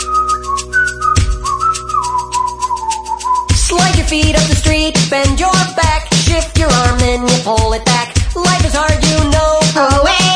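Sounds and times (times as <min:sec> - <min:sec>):
person whistling a wavering melody: 0:00.0 - 0:03.6
faint rhythmic beat: 0:00.0 - 0:10.3
speech: 0:04.1 - 0:09.4.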